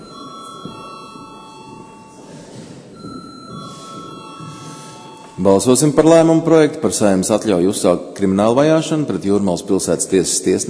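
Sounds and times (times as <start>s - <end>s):
parliament chamber electric bell ringing to call members to a vote: 0.0s - 6.5s
speech: 5.4s - 10.6s.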